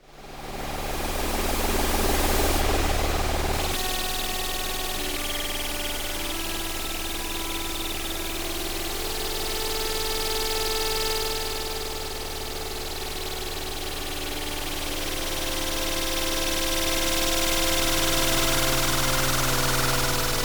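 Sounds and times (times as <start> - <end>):
G drone: 0.2 - 20.4.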